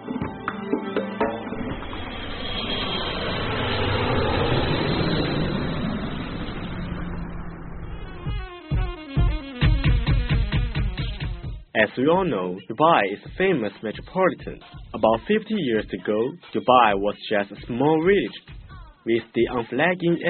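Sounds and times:
airplane engines roaring during takeoff: 0:00.8 - 0:09.1
rhythmic music: 0:08.1 - 0:20.2
speech: 0:12.0 - 0:20.2.

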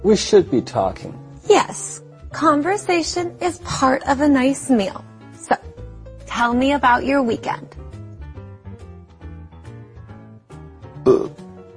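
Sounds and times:
speech: 0:00.0 - 0:05.7, 0:06.3 - 0:07.8
soft steady musical backing: 0:00.0 - 0:11.7
loud throaty burp: 0:11.0 - 0:11.4.

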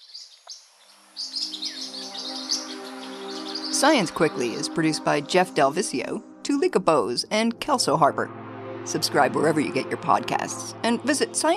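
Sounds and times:
parrotlets chirping: 0:01.2 - 0:03.9
speech: 0:03.8 - 0:11.5.

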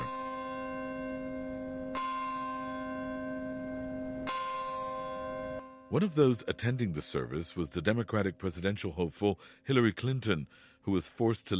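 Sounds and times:
church bell tolling: 0:00.0 - 0:08.2
speech: 0:05.9 - 0:11.5.

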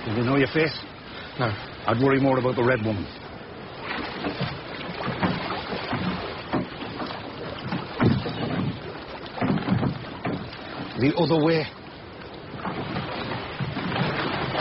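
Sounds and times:
speech: 0:00.0 - 0:03.3, 0:11.0 - 0:11.8
oars dipping and splashing as a small rowboat glides through water: 0:00.0 - 0:14.5
wooden creaks of a small rowboat: 0:04.0 - 0:14.5.

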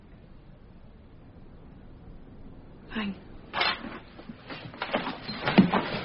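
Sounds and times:
desk drawer scraping open: 0:03.6 - 0:06.0.

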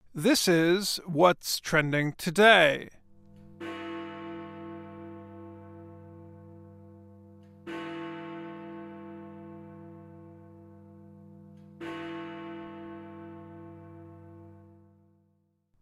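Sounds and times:
speech: 0:00.2 - 0:03.0
large clock tower bell striking the hour in London: 0:03.4 - 0:15.0.

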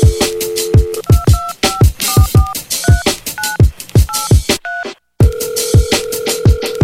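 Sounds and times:
telephone dial tone: 0:00.0 - 0:02.6, 0:04.1 - 0:06.8
punchy drum beat: 0:00.0 - 0:06.8
touch-tone dialing beeps: 0:00.0 - 0:06.8.

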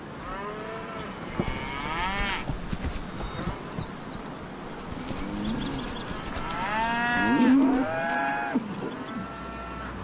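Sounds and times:
herd of cattle mooing: 0:00.3 - 0:02.5, 0:05.0 - 0:09.9
low hum: 0:00.4 - 0:08.2.

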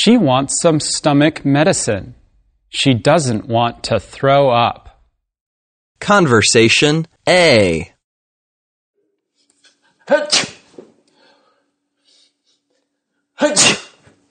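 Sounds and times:
speech: 0:00.0 - 0:04.8, 0:06.0 - 0:07.9, 0:10.1 - 0:10.5, 0:13.4 - 0:13.8
person sneezing: 0:10.1 - 0:10.8, 0:13.4 - 0:14.2.

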